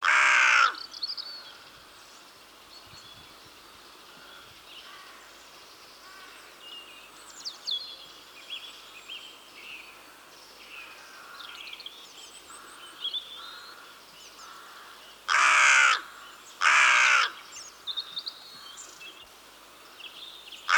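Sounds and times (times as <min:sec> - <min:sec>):
crow giving loud harsh caws: 0:00.0 - 0:00.8, 0:12.7 - 0:17.4
faint background bird calls: 0:00.0 - 0:20.7.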